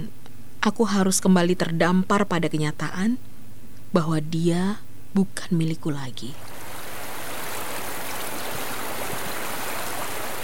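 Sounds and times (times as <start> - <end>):
speech: 0.6 - 3.3, 3.9 - 6.6
rushing water of a waterfall: 6.4 - 10.4.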